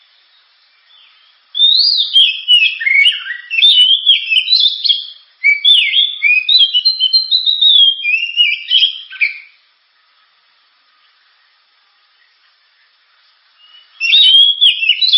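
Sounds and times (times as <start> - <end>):
Oriental magpie-robin singing: 0.8 - 9.6, 13.6 - 15.1.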